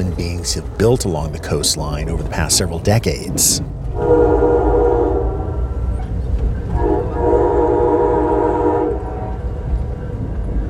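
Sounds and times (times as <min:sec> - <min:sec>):
passenger train running along the tracks on the coastline: 0:00.0 - 0:10.6
speech: 0:00.2 - 0:04.5
passenger train horn: 0:03.9 - 0:05.9, 0:06.7 - 0:09.6.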